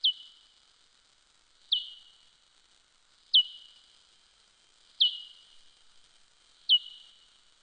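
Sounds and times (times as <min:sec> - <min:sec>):
soprano pipistrelle echolocation calls: 0:00.0 - 0:00.4, 0:01.7 - 0:02.3, 0:03.3 - 0:03.9, 0:05.0 - 0:05.6, 0:06.7 - 0:07.4.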